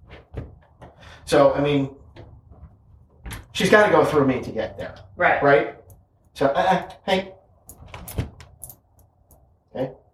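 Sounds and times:
speech: 1.3s - 2.0s, 3.6s - 5.8s, 6.4s - 7.3s, 9.8s - 10.0s
door swinging shut with a dull thud: 7.8s - 8.4s.

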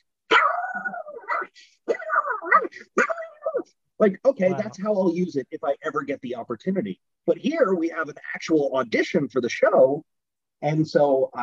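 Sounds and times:
person imitating a pug barking: 0.3s - 3.8s
speech: 4.0s - 11.4s.

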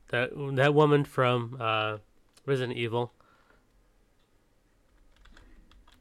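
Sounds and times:
speech: 0.1s - 3.2s
typing on a computer keyboard: 4.9s - 5.9s.

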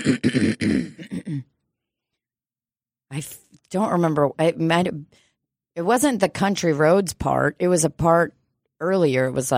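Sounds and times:
speech: 0.0s - 0.5s, 3.1s - 5.2s, 5.8s - 9.5s
person clearing throat: 0.0s - 1.6s.

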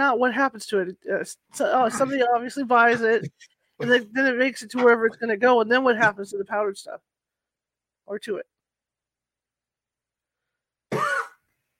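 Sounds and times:
speech: 0.0s - 7.1s, 8.1s - 8.5s
short throaty cough with throat clearing: 2.9s - 4.1s, 10.9s - 11.4s.

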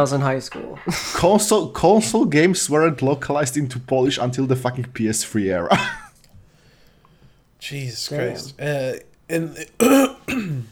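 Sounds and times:
speech: 0.0s - 6.0s, 7.6s - 10.7s
man clearing his throat: 9.6s - 10.7s.

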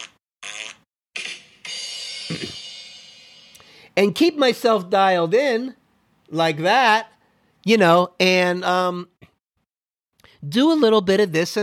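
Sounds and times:
fart sound effects played from a soundboard: 2.3s - 2.7s
speech: 4.0s - 9.1s, 10.4s - 11.6s.

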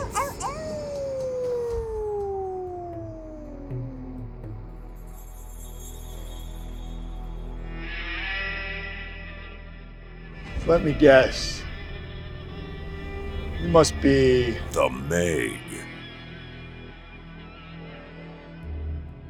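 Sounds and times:
wolf howling: 0.0s - 4.4s
speech: 10.7s - 11.6s, 13.6s - 15.8s.

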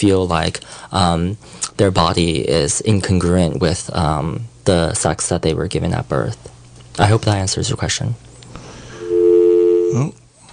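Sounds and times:
speech: 0.0s - 8.3s, 9.9s - 10.2s
telephone ringing for an incoming caller: 9.0s - 10.0s.

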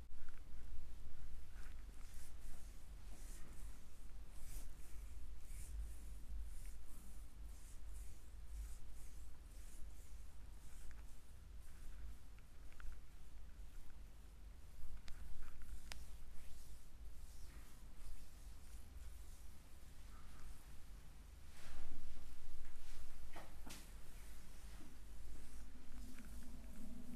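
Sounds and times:
hands rubbing and kneading in a deep foot massage: 0.1s - 27.1s
steady low hum: 25.1s - 27.1s.

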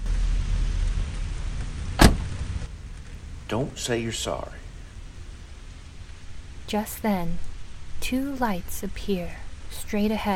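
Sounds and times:
low rumble: 0.0s - 10.0s
heavy rain pouring around a car: 0.0s - 10.3s
sharp thump: 1.6s - 2.4s
speech: 3.5s - 4.6s, 6.7s - 10.3s.

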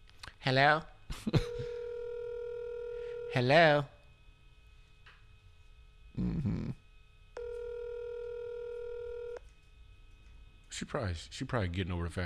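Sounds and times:
speech: 0.4s - 1.7s, 3.3s - 3.9s, 10.8s - 12.2s
electronic phone tone from a button press on a keyless phone: 1.4s - 3.4s, 7.4s - 9.4s.

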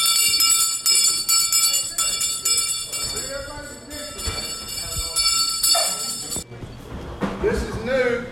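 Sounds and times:
church bell ringing: 0.0s - 6.4s
crowd voices: 0.0s - 8.2s.

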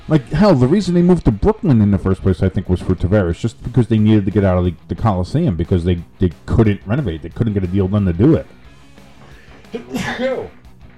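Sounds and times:
speech: 0.1s - 8.6s, 9.7s - 10.6s
loud sneeze: 9.7s - 10.5s.

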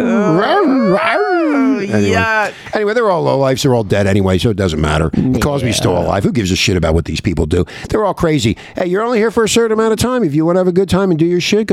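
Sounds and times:
person imitating a dog with a whining howl: 0.0s - 2.3s
speech: 1.9s - 11.7s.

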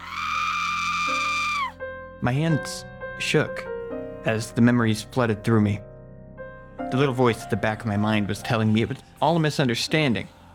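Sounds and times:
woman screaming: 0.0s - 1.8s
speech: 2.2s - 5.9s, 6.9s - 10.4s.

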